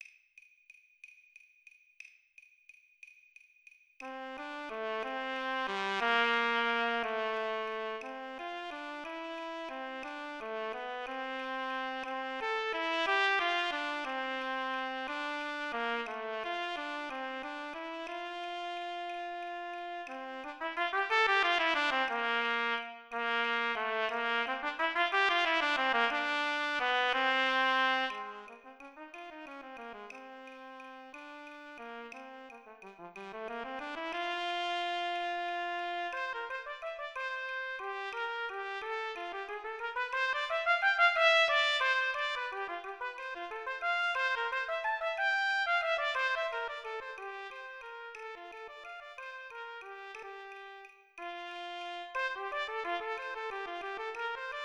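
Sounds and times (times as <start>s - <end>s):
trumpet playing along at 60 BPM: 4.0s - 54.6s.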